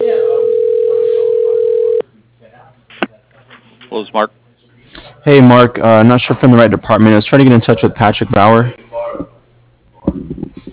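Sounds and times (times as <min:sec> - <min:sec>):
office phone line ring tone: 0:00.0 - 0:02.0
speech: 0:04.1 - 0:04.4, 0:05.2 - 0:09.3.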